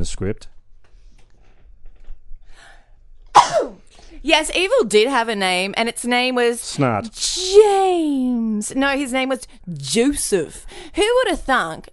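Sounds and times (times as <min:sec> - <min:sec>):
speech: 0:00.0 - 0:00.6, 0:03.6 - 0:11.9
person sneezing: 0:03.3 - 0:03.9.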